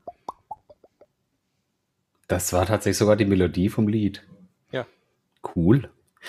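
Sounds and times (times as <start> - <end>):
voice imitating popcorn popping with mouth pops: 0.0 - 1.1
speech: 2.3 - 6.2.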